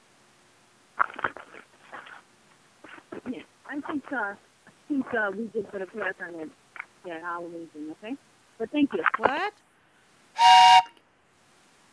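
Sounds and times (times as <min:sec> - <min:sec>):
speech: 0:04.1 - 0:09.6
train whistle blast: 0:10.4 - 0:11.0.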